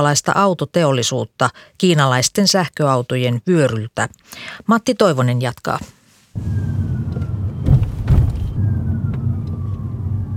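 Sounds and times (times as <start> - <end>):
speech: 0.0 - 6.9
electric Citroen EC3 regenerative braking whine: 6.4 - 10.3
soft thumps: 7.2 - 8.6.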